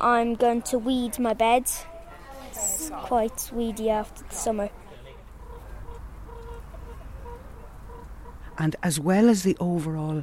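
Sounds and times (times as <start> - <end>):
speech: 0.0 - 1.9, 2.9 - 4.8, 8.6 - 10.2
hens clucking in a garden: 2.2 - 8.7.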